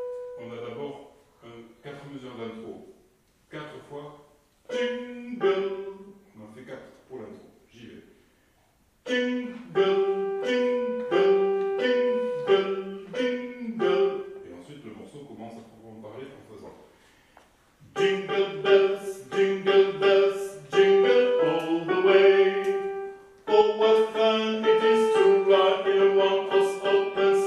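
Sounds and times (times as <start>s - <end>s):
alto voices singing a Christmas carol: 4.7s - 6.5s, 9.0s - 14.9s, 17.8s - 27.4s.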